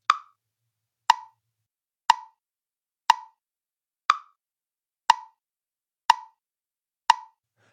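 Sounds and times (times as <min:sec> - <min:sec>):
metronome clicking: 0:00.1 - 0:00.3, 0:01.1 - 0:01.3, 0:02.1 - 0:02.4, 0:03.1 - 0:03.4, 0:04.1 - 0:04.3, 0:05.1 - 0:05.4, 0:06.1 - 0:06.4, 0:07.1 - 0:07.4.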